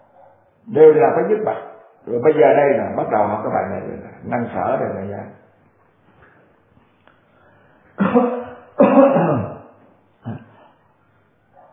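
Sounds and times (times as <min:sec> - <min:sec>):
speech: 0:00.7 - 0:05.4, 0:08.2 - 0:08.4
person coughing: 0:08.0 - 0:09.6, 0:10.2 - 0:10.7.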